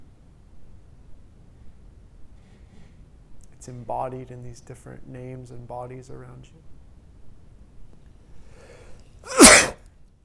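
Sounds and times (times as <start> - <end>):
quiet hiss: 0.0 - 10.2
speech: 3.6 - 6.8
intake of breath: 8.4 - 9.4
sneeze: 9.2 - 9.8.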